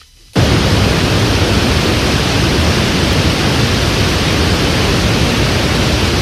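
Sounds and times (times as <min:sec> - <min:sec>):
loud steady hiss of white noise: 0:00.0 - 0:06.1.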